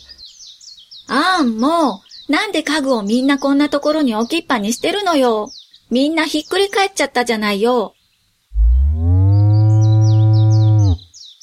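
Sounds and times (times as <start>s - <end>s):
speech: 1.1s - 8.0s
ox mooing: 8.5s - 11.1s.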